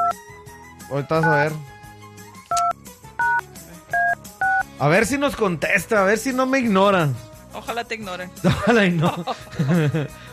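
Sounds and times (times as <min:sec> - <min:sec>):
speech: 0:00.9 - 0:01.7, 0:04.8 - 0:10.2
telephone keypad tones as a number is dialled: 0:02.5 - 0:03.4
laughter: 0:08.4 - 0:10.2.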